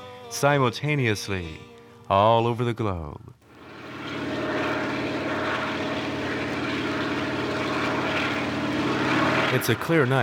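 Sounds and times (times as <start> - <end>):
speech: 0.3 - 3.4, 9.5 - 10.2
helicopter engine and rotor in flight: 3.4 - 10.2.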